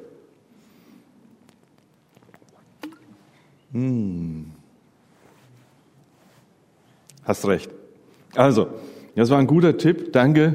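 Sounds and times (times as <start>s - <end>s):
person gulping water: 0.5s - 4.8s
water sloshing in a water bottle: 1.4s - 3.6s
speech: 3.7s - 4.6s, 7.3s - 7.8s, 8.4s - 10.5s.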